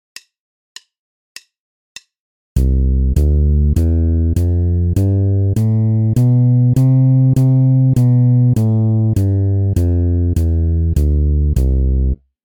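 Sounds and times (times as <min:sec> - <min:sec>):
bass playing C major scale exercise: 0:02.6 - 0:12.2.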